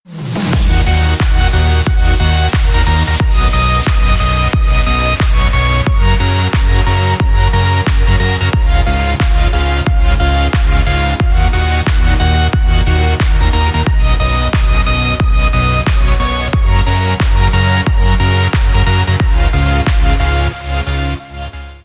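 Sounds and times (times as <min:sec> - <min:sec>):
bass: 0:00.0 - 0:21.8.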